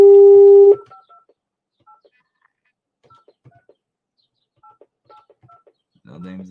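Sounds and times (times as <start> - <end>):
telephone keypad dialing tones: 0.0 - 1.0
speech: 6.1 - 6.4.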